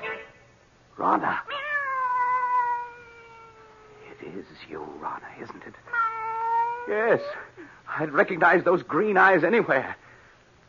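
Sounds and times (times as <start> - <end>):
speech: 1.0 - 1.6, 4.4 - 6.1, 6.9 - 10.0
cat meowing: 1.5 - 4.1, 5.9 - 7.4.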